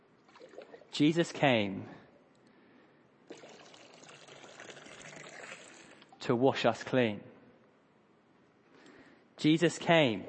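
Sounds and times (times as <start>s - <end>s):
water being poured out: 0.3s - 0.9s, 3.3s - 6.2s, 10.1s - 10.2s
speech: 0.9s - 2.0s, 6.3s - 7.3s, 9.4s - 10.2s.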